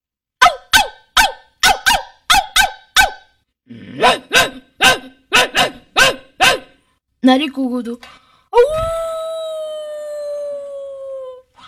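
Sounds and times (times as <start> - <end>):
big dog and small dog barking: 0.4 - 3.3, 4.0 - 6.8
speech: 3.7 - 4.2, 7.2 - 8.9.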